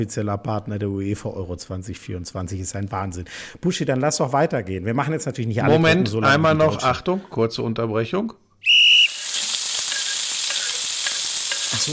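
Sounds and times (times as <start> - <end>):
speech: 0.0 - 9.0
brief shrill whistle: 8.6 - 10.8
food frying in a hot pan: 8.7 - 11.9.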